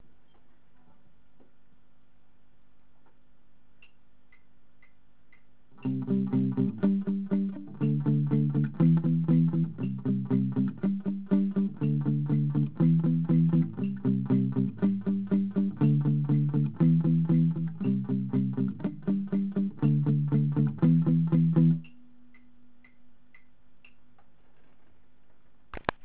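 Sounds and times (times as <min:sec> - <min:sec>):
palm muted guitar: 0:05.8 - 0:22.0.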